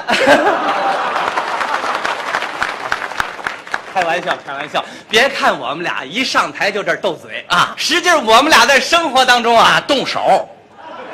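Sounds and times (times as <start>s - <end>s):
laughter: 0.0s - 2.6s, 10.7s - 11.1s
speech: 0.1s - 0.7s, 4.0s - 10.6s
audience applause: 0.3s - 5.1s.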